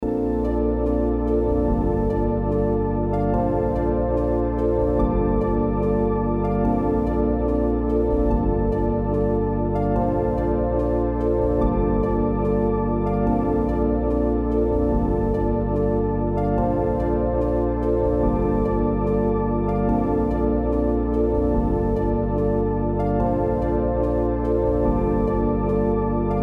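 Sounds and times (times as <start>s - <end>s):
A minor 145 BPM pad synth: 0.0s - 26.4s.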